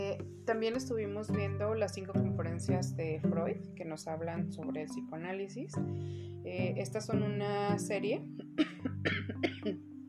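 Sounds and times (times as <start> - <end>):
speech: 0.2 - 8.4, 9.3 - 9.9
person giving short raspy coughs: 8.6 - 9.8.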